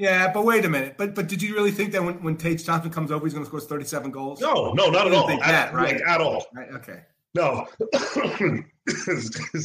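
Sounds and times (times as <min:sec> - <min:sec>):
speech: 0:00.0 - 0:09.6
man coughing harshly: 0:07.8 - 0:09.6.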